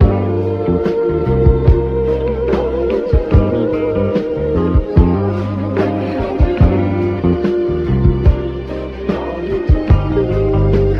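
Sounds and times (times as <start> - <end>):
phonk music loop: 0.0 - 10.9.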